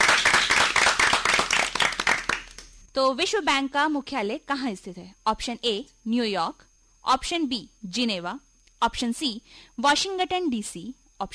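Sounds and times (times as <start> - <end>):
audience applause for a quiz-show contestant: 0.0 - 2.7
speech: 3.0 - 11.3.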